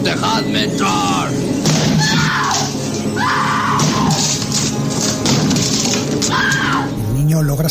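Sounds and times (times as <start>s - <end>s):
speech: 0.0s - 1.5s, 7.4s - 7.6s
woman screaming in terror: 2.0s - 4.2s, 6.3s - 6.9s
axe smashing and splintering a wooden bathroom door: 3.7s - 6.4s.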